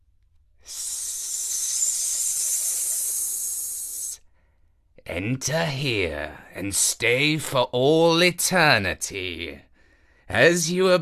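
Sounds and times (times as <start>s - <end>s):
serpent guarding a cave entrance hissing: 0.6s - 4.2s
speech: 5.1s - 9.7s, 10.3s - 11.0s.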